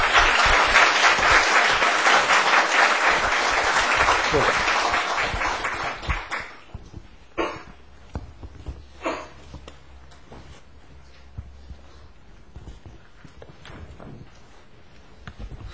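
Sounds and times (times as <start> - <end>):
applause from a church congregation: 0.0 - 6.7.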